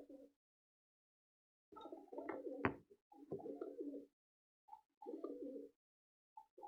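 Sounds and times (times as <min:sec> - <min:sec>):
pigeons cooing: 0:00.0 - 0:00.3, 0:01.8 - 0:04.1, 0:05.0 - 0:05.8.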